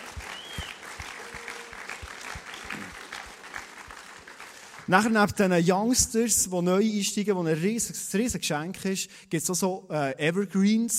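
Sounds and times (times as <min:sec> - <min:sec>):
faint whistle or cheer: 0:00.0 - 0:03.0
audience applause: 0:00.0 - 0:05.0
speech: 0:04.9 - 0:10.9.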